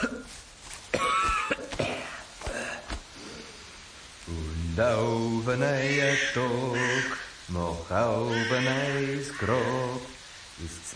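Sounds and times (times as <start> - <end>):
person coughing heavily and strained: 0.9 - 2.9
speech: 4.8 - 10.9.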